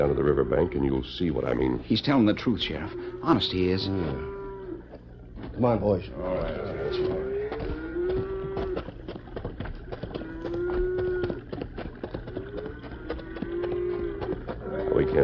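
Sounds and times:
speech: 0.0s - 4.4s, 5.6s - 7.3s
cattle hooves scuffling and clattering: 1.6s - 15.2s
herd of cattle mooing: 2.5s - 5.0s, 6.1s - 9.0s, 9.9s - 15.2s.

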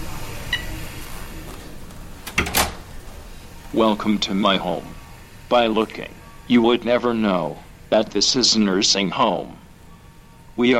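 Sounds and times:
automatic door of a resident's room in a nursing home opening: 1.8s - 3.8s
speech: 3.7s - 9.6s, 10.6s - 10.7s.

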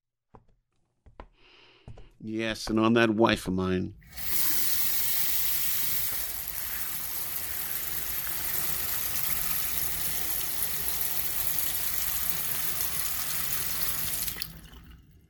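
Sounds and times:
speech: 2.2s - 4.4s
cold water running from a tap: 4.0s - 15.2s.

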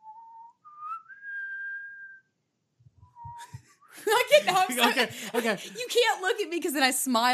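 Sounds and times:
person whistling a slow solemn bugle call: 0.0s - 2.2s, 3.0s - 4.0s
laughter: 3.4s - 6.3s
speech: 3.4s - 7.3s.

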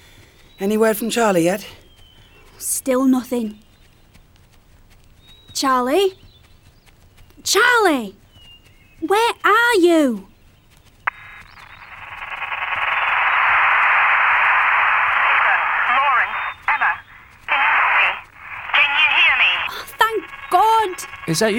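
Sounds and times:
speech: 0.6s - 1.8s, 2.6s - 3.6s, 5.6s - 6.2s, 7.4s - 8.2s, 9.0s - 10.3s, 21.4s - 21.5s
loud band-limited radio static with warbling distortion: 11.1s - 21.5s
voice through a crackly distorted radio line: 14.8s - 21.5s.

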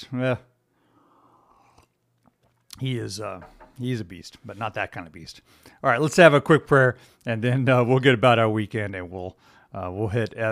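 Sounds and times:
speech: 0.0s - 0.5s, 2.8s - 10.4s
slurping sip of hot coffee: 1.2s - 2.6s.

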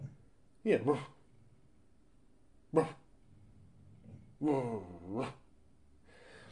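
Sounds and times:
dog growling and barking at hallway noise: 0.0s - 0.2s, 2.7s - 3.1s, 3.8s - 5.5s
speech: 0.6s - 1.2s, 2.7s - 3.0s, 4.4s - 5.4s.

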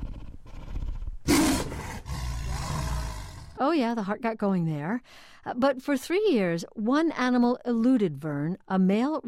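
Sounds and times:
white tiger roaring at a shelter for rescued animals: 0.0s - 3.6s
speech: 3.6s - 9.2s.

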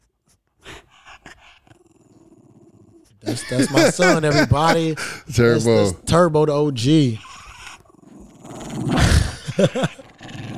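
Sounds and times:
dog growling and snarling: 0.6s - 4.7s, 7.1s - 10.5s
laughter: 3.2s - 5.4s, 9.0s - 10.2s
speech: 3.2s - 7.2s, 9.6s - 10.0s.

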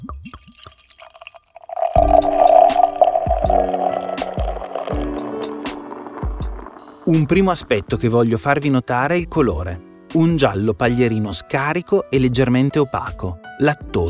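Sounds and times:
beer pouring from a bottle and gurgling: 0.0s - 8.2s
speech: 7.1s - 14.0s.

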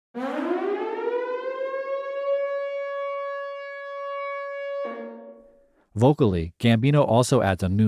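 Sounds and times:
harsh warning siren wailing: 0.2s - 5.6s
speech: 6.0s - 7.8s.

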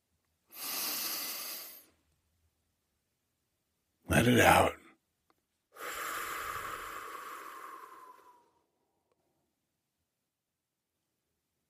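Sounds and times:
deep breath in: 0.5s - 2.0s, 5.8s - 8.8s
speech: 4.2s - 4.8s.

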